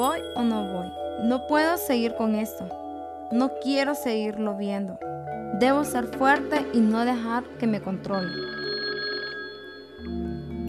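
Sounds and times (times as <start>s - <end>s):
speech: 0.0s - 8.6s
telephone ringing with steady electronic tones: 8.1s - 10.6s.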